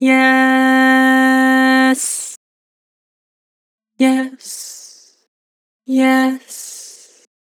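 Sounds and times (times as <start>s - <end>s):
person singing: 0.0s - 2.3s, 4.0s - 4.6s, 5.9s - 6.7s.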